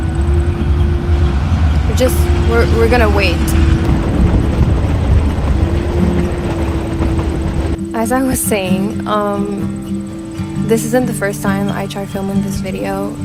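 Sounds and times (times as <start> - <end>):
train rumbling past: 0.0 - 9.1
speech: 2.0 - 3.8, 8.0 - 10.0, 10.7 - 13.2.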